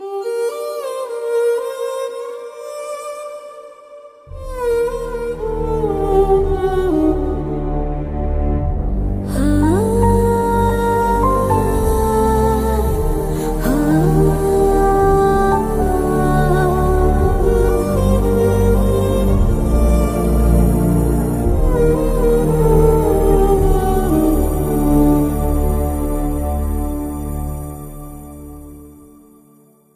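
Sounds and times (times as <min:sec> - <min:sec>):
emotional background music: 0:00.0 - 0:03.6, 0:04.2 - 0:29.9.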